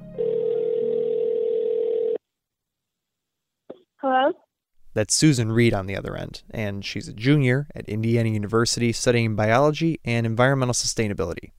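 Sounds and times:
telephone line ringing tone: 0.1 - 2.2
speech: 5.0 - 11.5.

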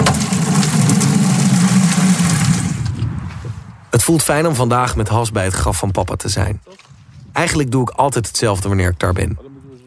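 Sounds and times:
water running from a tap: 0.0 - 2.8
speech: 4.1 - 9.5.

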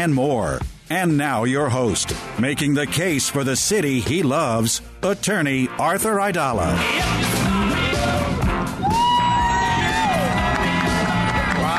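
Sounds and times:
speech: 0.0 - 7.5
sliding yells and shouts: 6.8 - 11.7
large crowd cheering and whooping in Times Square, New York City: 7.9 - 11.7.

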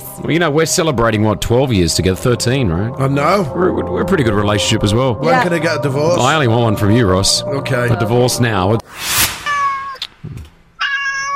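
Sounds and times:
speech: 0.2 - 9.1
adopted cat meowing: 10.8 - 11.3.

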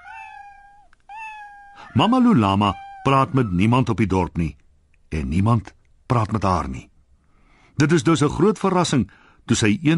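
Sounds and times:
cat meowing: 0.0 - 3.6
speech: 2.0 - 6.9, 7.8 - 9.9.

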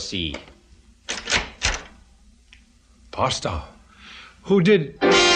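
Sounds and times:
speech: 0.0 - 0.5, 3.2 - 3.8, 4.4 - 5.2
press room door latch clattering: 1.1 - 1.9.

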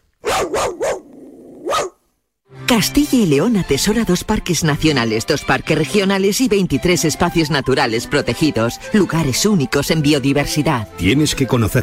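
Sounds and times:
dog barking: 0.2 - 2.0
dog low rumbling growl: 0.4 - 1.9
speech: 2.7 - 11.8.

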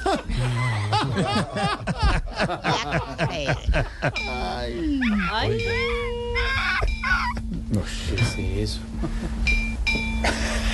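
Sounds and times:
laughter: 0.0 - 4.7
low steady hum: 0.0 - 10.7
speech: 1.2 - 6.9, 7.7 - 9.6
bells ringing: 4.0 - 6.1, 6.8 - 7.4, 8.0 - 8.8, 9.4 - 10.7.

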